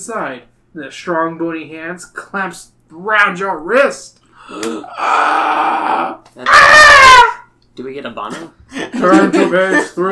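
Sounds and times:
speech: 0:00.0 - 0:10.1
person screaming in fright: 0:04.5 - 0:07.5
laughter: 0:08.3 - 0:10.1.

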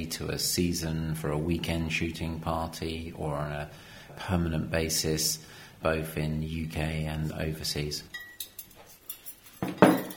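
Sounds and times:
speech: 0:00.0 - 0:08.2
cutlery and wine glasses clinking on a table: 0:08.1 - 0:10.1.

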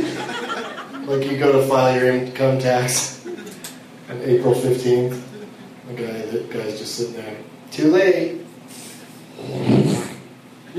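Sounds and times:
laughter: 0:00.0 - 0:01.1, 0:03.2 - 0:03.6
speech: 0:01.1 - 0:03.2, 0:04.1 - 0:05.3, 0:05.9 - 0:08.4, 0:09.4 - 0:09.9
buzzy mouth raspberry made by blowing through the lips: 0:09.3 - 0:10.2.

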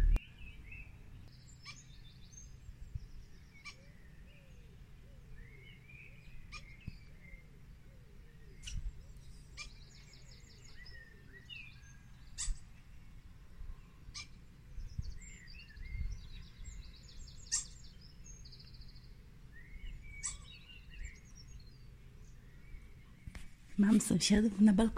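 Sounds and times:
small birds chirping on a balcony: 0:00.0 - 0:24.9
speech: 0:23.8 - 0:24.9.

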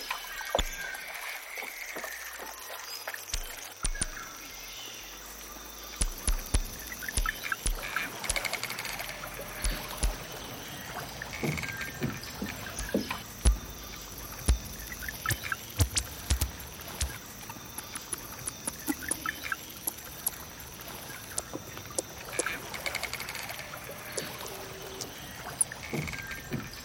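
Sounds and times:
high insect-like hiss of jungle field recording: 0:00.0 - 0:26.8
sharp clicks and pops: 0:03.3 - 0:04.4, 0:06.0 - 0:09.0, 0:09.6 - 0:10.2, 0:12.8 - 0:20.4.

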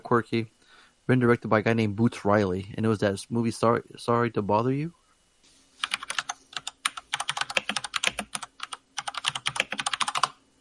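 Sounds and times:
speech: 0:00.1 - 0:05.0
loud fast typing on computer keyboard: 0:05.8 - 0:10.4.

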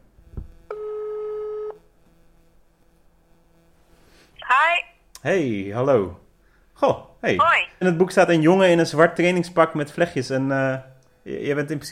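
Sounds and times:
soft thump: 0:00.3 - 0:00.6
electronic ringback tone from an outgoing phone call: 0:00.7 - 0:01.8
speech: 0:05.2 - 0:06.2, 0:06.8 - 0:11.9.

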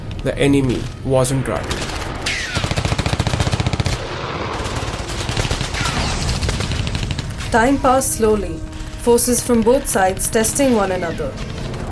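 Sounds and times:
speech: 0:00.2 - 0:01.8, 0:07.5 - 0:11.5
light machine gun fire in short bursts: 0:01.7 - 0:07.8.

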